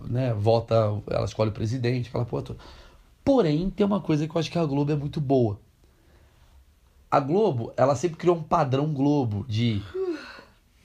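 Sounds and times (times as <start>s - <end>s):
speech: 0.1s - 5.6s, 7.1s - 10.3s
person yawning: 9.8s - 10.6s.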